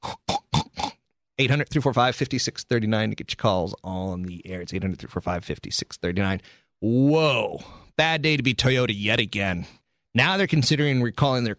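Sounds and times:
pig oinking and grunting: 0.0 - 1.0
speech: 1.4 - 11.5.

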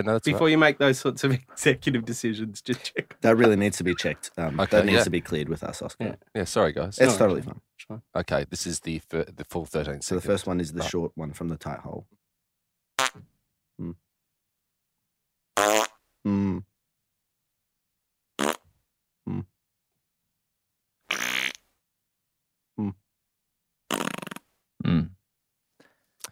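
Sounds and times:
speech: 0.0 - 12.2, 13.2 - 14.0, 15.6 - 16.7
farts: 13.0 - 13.2, 15.6 - 16.6, 18.4 - 18.6, 21.1 - 21.6, 23.9 - 25.2.

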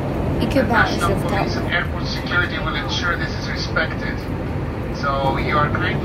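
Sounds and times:
airplane cabin drone in first class on a flight to Copenhagen: 0.0 - 6.0
speech: 0.5 - 4.4, 5.0 - 6.0.

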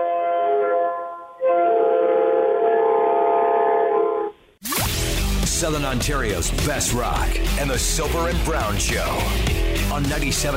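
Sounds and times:
loud train horn blasts: 0.0 - 4.4
speech: 5.6 - 10.5.

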